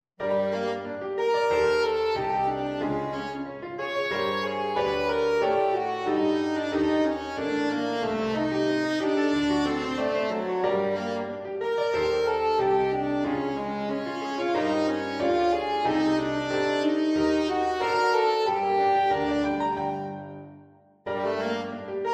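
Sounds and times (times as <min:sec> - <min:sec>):
strange saxophone playing: 0:00.3 - 0:20.4, 0:21.1 - 0:22.1.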